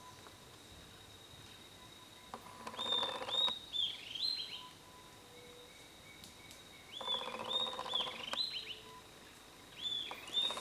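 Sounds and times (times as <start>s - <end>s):
Corythopis delalandi calling: 1.5s - 10.6s.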